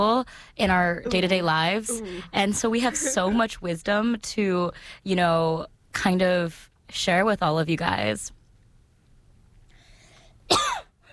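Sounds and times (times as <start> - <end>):
speech: 0.0 - 8.4
person coughing: 1.9 - 3.4, 10.5 - 10.9.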